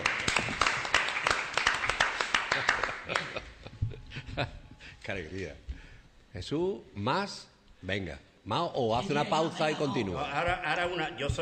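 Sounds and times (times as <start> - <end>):
single person clapping hands: 0.0 - 3.4
speech: 4.4 - 5.7, 6.3 - 11.3.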